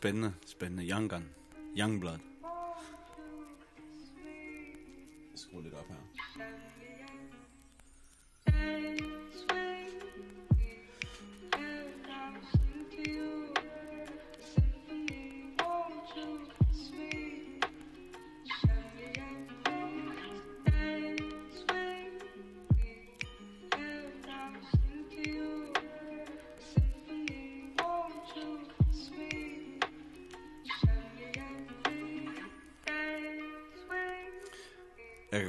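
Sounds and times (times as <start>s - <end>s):
speech: 0.0s - 2.3s, 5.4s - 6.9s
vinyl crackle effect with clicks and pops: 0.0s - 35.4s
melodic beat: 8.5s - 33.2s.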